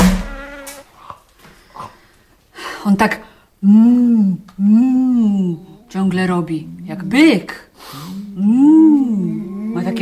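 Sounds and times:
wasp buzzing: 0.0 - 0.9
speech: 2.8 - 7.6, 8.4 - 9.9.

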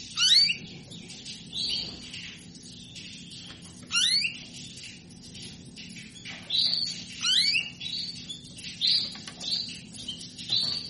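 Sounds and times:
female canary calling to solicit mating: 0.0 - 10.8.

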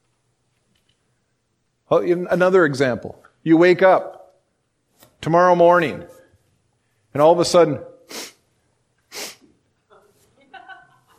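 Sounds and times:
speech: 1.9 - 4.2, 5.2 - 6.2, 7.1 - 8.2
person sniffling: 8.0 - 8.5, 9.1 - 9.6
laughter: 9.9 - 11.1.

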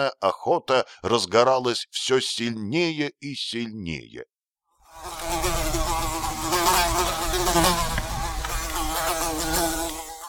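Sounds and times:
speech: 0.0 - 4.3
housefly buzzing: 4.8 - 10.2.

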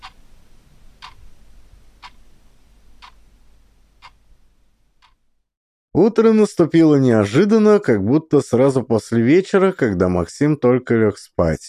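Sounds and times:
weight-driven wall clock ticking: 1.0 - 1.2
speech: 6.0 - 11.6.

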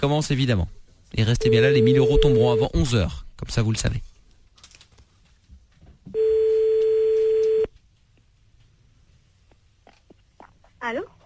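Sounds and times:
speech: 0.0 - 4.1, 10.8 - 11.2
faint noise: 0.0 - 11.2
telephone tone while placing a call: 1.4 - 2.8, 6.2 - 7.7.

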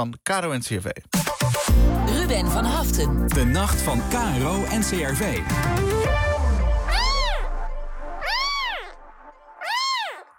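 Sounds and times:
speech: 0.0 - 6.2
kitten meowing: 6.9 - 7.5, 8.2 - 9.0, 9.6 - 10.2.

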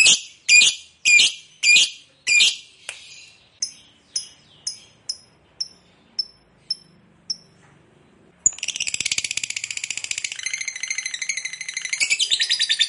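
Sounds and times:
fighter lovebird singing energetically: 0.0 - 7.6, 8.4 - 12.8.

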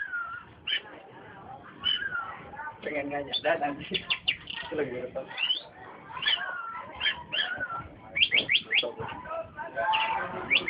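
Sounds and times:
Oriental magpie-robin singing: 0.0 - 0.9, 1.8 - 2.4, 3.0 - 9.1, 9.8 - 10.6.

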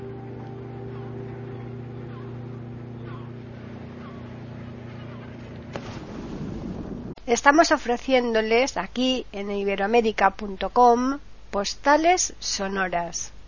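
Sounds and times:
small motor launch engine droning on ocean waves: 0.0 - 7.2
wind noise: 5.4 - 7.2
speech: 7.3 - 13.4.

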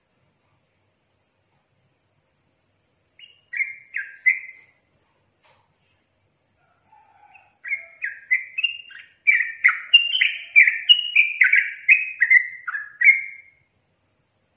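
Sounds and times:
Yellow-vented bulbul song: 3.0 - 4.9, 6.9 - 13.8.

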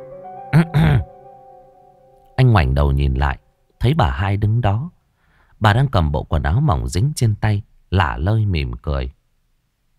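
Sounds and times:
soft steady musical hum: 0.0 - 5.0
woman clearing her throat: 0.5 - 1.1
speech: 2.6 - 5.0, 5.6 - 9.2.

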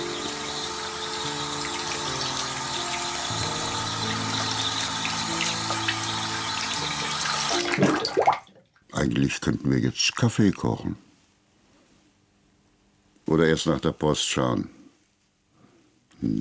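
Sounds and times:
water running from a tap in a house: 0.0 - 8.4
water splash: 7.2 - 8.6
speech: 9.2 - 11.1, 13.3 - 14.8, 16.2 - 16.3.

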